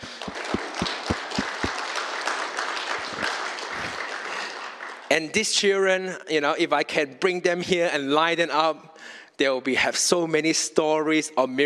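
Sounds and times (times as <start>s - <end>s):
crowd clapping in sustained dense applause: 0.0s - 5.1s
speech: 5.2s - 11.6s.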